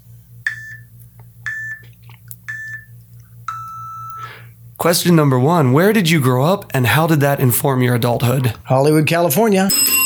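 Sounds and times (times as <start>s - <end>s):
faint low hum: 0.0s - 10.0s
electronic countdown timer beeps: 0.5s - 1.9s, 2.5s - 4.3s, 9.7s - 10.0s
speech: 4.8s - 9.9s.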